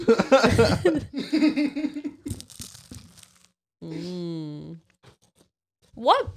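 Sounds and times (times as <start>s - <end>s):
laughter: 0.0s - 2.3s
crunchy biting and tearing into bread: 2.3s - 3.6s
short hummed mmm from a voice: 3.8s - 4.8s.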